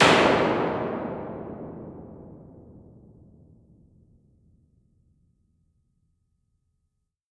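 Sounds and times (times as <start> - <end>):
EMT 140 plate reverb: 0.0 - 3.3.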